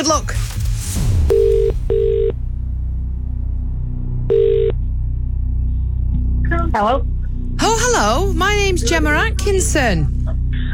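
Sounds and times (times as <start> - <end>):
speech: 0.0 - 0.4, 6.8 - 7.1, 8.8 - 10.7
steady low musical bed: 0.0 - 10.7
ringback tone of an outgoing phone call: 4.3 - 4.8.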